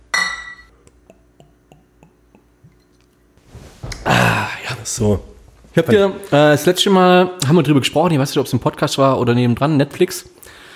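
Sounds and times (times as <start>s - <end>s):
glass clink: 0.1s - 0.7s
speech: 4.8s - 10.4s.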